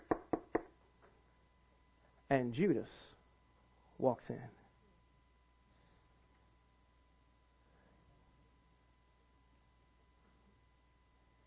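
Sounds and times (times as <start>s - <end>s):
sharp knocks on a door: 0.0s - 0.7s
speech: 2.3s - 3.2s, 4.0s - 4.6s.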